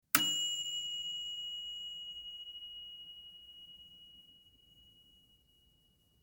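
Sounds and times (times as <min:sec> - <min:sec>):
oven timer ding: 0:00.1 - 0:04.0.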